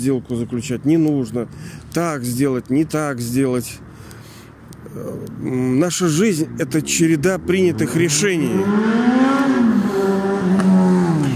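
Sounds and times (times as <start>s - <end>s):
speech: 0.0s - 3.9s, 5.0s - 9.4s
motorcycle engine revving outside: 7.2s - 11.3s.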